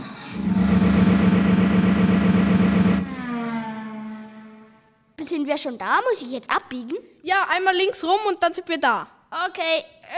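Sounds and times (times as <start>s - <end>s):
car engine humming while driving: 0.4s - 3.4s
speech: 5.3s - 10.1s.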